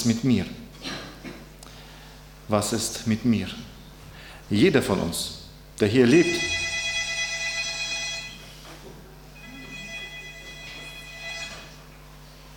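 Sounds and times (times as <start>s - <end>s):
speech: 0.0s - 0.6s, 2.5s - 3.7s, 4.5s - 6.6s
alarm clock ringing with a high electronic tone: 6.2s - 8.4s, 9.4s - 11.8s.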